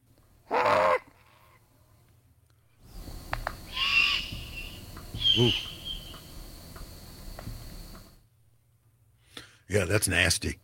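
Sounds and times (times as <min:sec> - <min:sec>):
faint noise: 0:00.0 - 0:10.6
juvenile great horned owl rasping screech: 0:03.6 - 0:06.3
speech: 0:05.4 - 0:05.7, 0:09.7 - 0:10.6.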